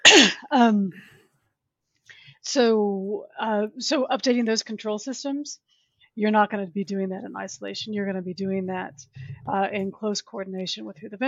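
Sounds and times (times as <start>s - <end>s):
person coughing: 0.0s - 0.5s
speech: 0.2s - 1.2s, 2.4s - 11.2s.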